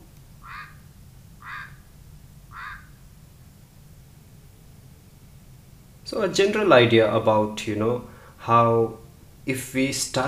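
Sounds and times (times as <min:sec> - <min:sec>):
steady low rumble: 0:00.0 - 0:10.2
Chihuahuan raven croaking calls: 0:00.4 - 0:03.1
speech: 0:06.1 - 0:10.2.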